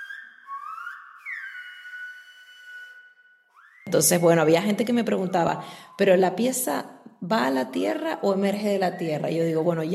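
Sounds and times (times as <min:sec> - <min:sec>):
person whistling: 0:00.0 - 0:04.1
speech: 0:03.9 - 0:09.9.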